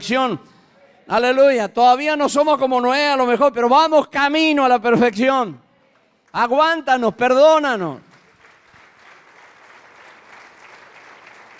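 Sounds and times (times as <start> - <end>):
speech: 0.1 - 5.6, 6.3 - 8.1
church audience applauding: 8.1 - 11.5.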